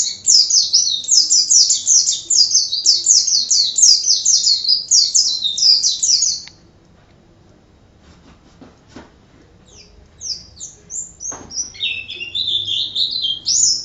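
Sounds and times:
White-eye excited chirping song: 0:00.0 - 0:06.6, 0:09.7 - 0:13.8
faint background noise: 0:00.0 - 0:13.8.

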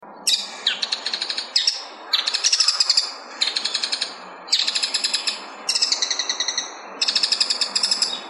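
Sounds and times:
bull-headed shrike calling: 0:00.2 - 0:08.2.

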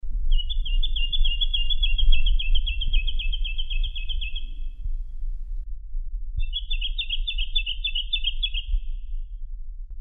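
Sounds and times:
low background rumble: 0:00.0 - 0:09.9
jacky winter rapid evenly repeated high chirps: 0:00.3 - 0:04.8, 0:06.4 - 0:09.0.

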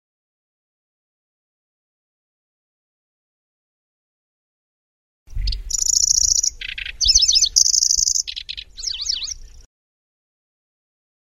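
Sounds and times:
Lanceolated warbler reeling trills, buzzy segments and whistled notes: 0:05.4 - 0:09.7.

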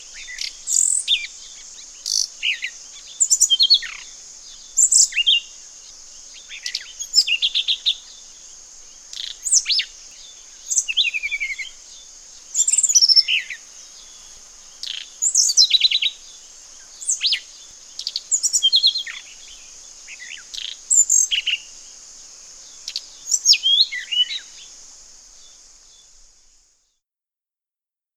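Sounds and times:
sikatan cacing flycatcher: 0:00.0 - 0:26.5.

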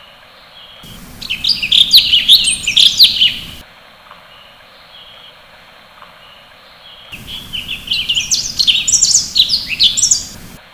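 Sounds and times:
sooty-headed bulbul song with bright whistled and chirping notes: 0:00.0 - 0:03.6, 0:06.0 - 0:10.6
steady low background hiss: 0:00.0 - 0:10.7.

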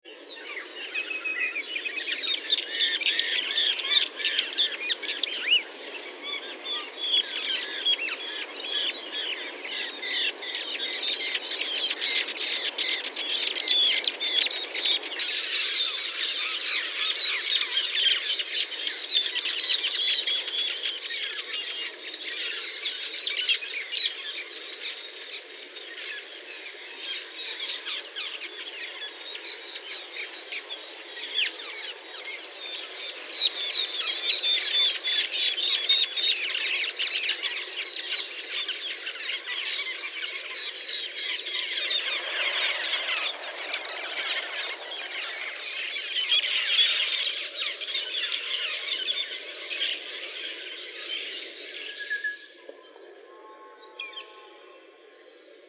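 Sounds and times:
Purple-throated Sunbird calling: 0:00.2 - 0:52.5.

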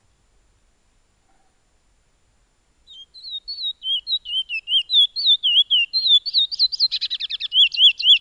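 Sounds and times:
piolet bird song with whistled notes and rattling trills: 0:02.9 - 0:08.1.

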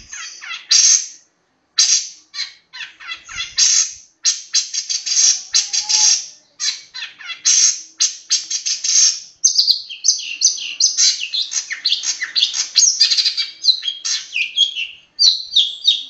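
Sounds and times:
Long-tailed shrike master song: 0:00.0 - 0:01.2, 0:01.8 - 0:16.0.

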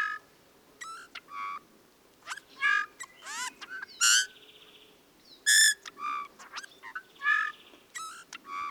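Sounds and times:
bullfinch calls: 0:00.8 - 0:01.6, 0:02.2 - 0:04.4, 0:05.5 - 0:08.6.

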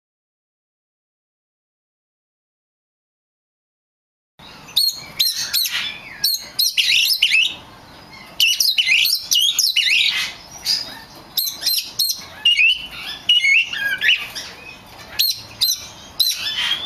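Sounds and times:
Oriental magpie-robin song: 0:04.4 - 0:16.8.

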